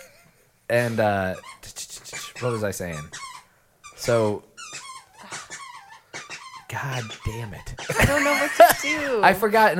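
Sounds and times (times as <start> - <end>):
speech: 0.7 - 1.8, 2.4 - 3.2, 4.0 - 4.5, 6.7 - 9.7
dog's rubber squeaky toy squeaking: 1.3 - 8.0
laughter: 7.9 - 9.2.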